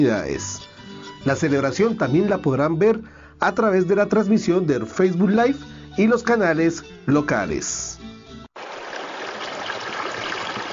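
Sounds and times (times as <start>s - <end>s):
speech: 0.0s - 7.9s
stream water trickling and babbling: 8.6s - 10.7s.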